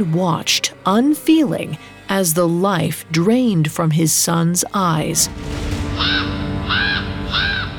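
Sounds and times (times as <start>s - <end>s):
speech: 0.0s - 6.8s
low rumbling background: 5.0s - 7.7s
raven cawing: 6.0s - 7.7s.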